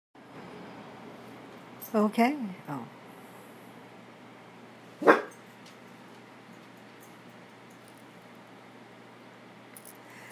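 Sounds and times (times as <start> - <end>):
speech: 1.9 - 3.0
single sharp dog bark: 5.0 - 5.4.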